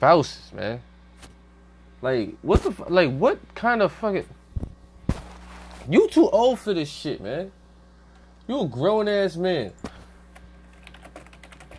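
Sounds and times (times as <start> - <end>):
speech: 0.0 - 0.9, 2.0 - 4.4, 5.9 - 7.6, 8.5 - 9.9
low steady electrical hum: 0.0 - 11.7
computer keyboard typing: 10.3 - 11.7.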